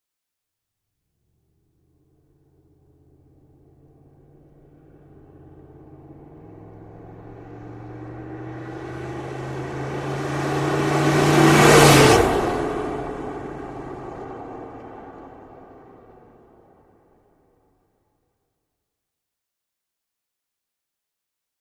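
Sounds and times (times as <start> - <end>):
Humvee passing by fast: 1.2 - 17.2.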